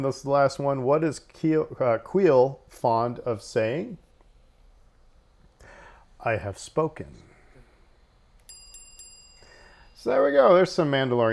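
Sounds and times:
speech: 0:00.0 - 0:04.0, 0:06.2 - 0:07.3, 0:10.0 - 0:11.3
small bright trivia game bell dinging: 0:08.4 - 0:10.9.

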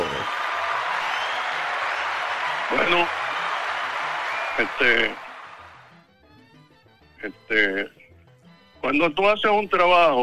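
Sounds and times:
crowd applauding: 0:00.0 - 0:06.0
speech: 0:02.7 - 0:03.2, 0:04.6 - 0:05.2, 0:07.2 - 0:08.0, 0:08.8 - 0:10.2.

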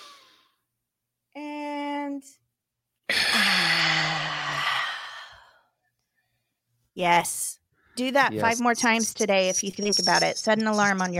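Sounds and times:
deep breath in: 0:03.2 - 0:06.5
speech: 0:07.0 - 0:11.1.

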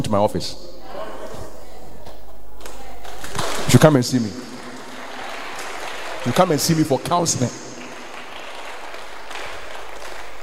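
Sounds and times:
speech: 0:00.1 - 0:01.0, 0:03.7 - 0:04.4, 0:06.2 - 0:07.7
audience at a church service clapping: 0:03.0 - 0:10.4.

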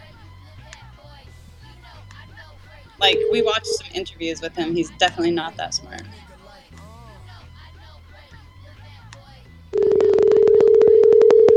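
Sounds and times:
telephone line crackling during a call: 0:03.0 - 0:04.2, 0:09.8 - 0:11.5
speech: 0:03.0 - 0:06.3
loud steady mid-pitched telephone tone: 0:03.0 - 0:06.5.

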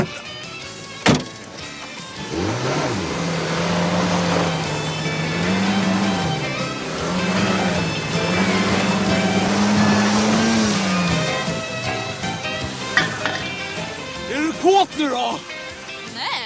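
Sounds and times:
car engine revving and accelerating: 0:00.0 - 0:16.2.

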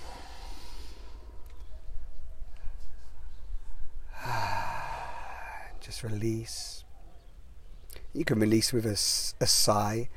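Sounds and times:
slow deep breath drawn in during a guided pause: 0:00.0 - 0:01.4, 0:04.1 - 0:05.8
speech: 0:05.9 - 0:06.8, 0:08.2 - 0:10.1.

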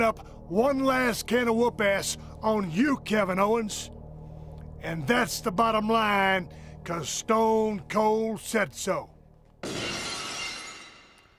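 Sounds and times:
speech: 0:00.0 - 0:04.0, 0:04.8 - 0:09.8
falling glass shards: 0:09.6 - 0:11.3
glass shattering entrance sound effect: 0:09.6 - 0:11.3.

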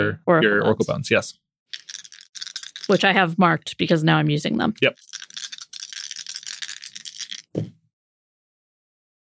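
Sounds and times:
speech: 0:00.0 - 0:01.9, 0:02.9 - 0:05.1
dice shaken in a cupped hand or cup and rolled: 0:01.7 - 0:03.2, 0:04.9 - 0:07.7.

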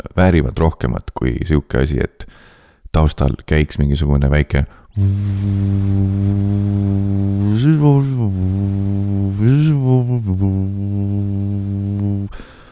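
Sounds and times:
speech: 0:00.0 - 0:12.5
person humming a low drone imitating a blower fan: 0:05.0 - 0:12.4.

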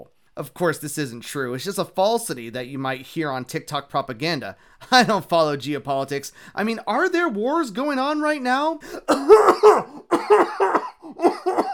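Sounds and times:
speech: 0:00.0 - 0:11.7
person coughing with something caught in the throat: 0:08.9 - 0:11.7.

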